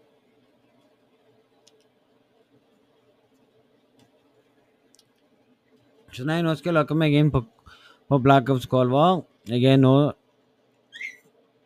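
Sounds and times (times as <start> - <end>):
speech: 6.1 - 10.2
small puppy whimpering: 11.0 - 11.3.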